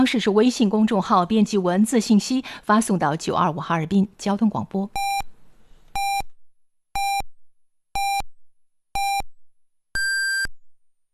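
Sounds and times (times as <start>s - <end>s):
speech: 0.0s - 5.1s
radio hourly time signal beeps: 6.0s - 6.3s, 7.0s - 7.2s, 8.0s - 8.2s, 9.0s - 9.3s, 10.0s - 10.5s.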